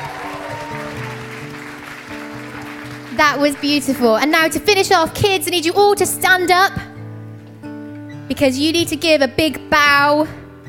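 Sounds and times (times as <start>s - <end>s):
large crowd applauding: 0.0s - 4.9s
speech: 3.2s - 6.9s, 8.3s - 10.4s.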